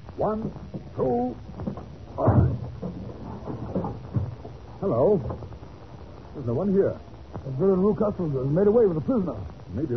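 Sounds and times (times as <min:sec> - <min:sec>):
speech: 0:00.2 - 0:01.5, 0:04.8 - 0:05.5, 0:06.4 - 0:09.9
soft knocks and thumps of door giving way: 0:00.2 - 0:06.1
locked door being forced open with heavy crash: 0:02.2 - 0:04.4.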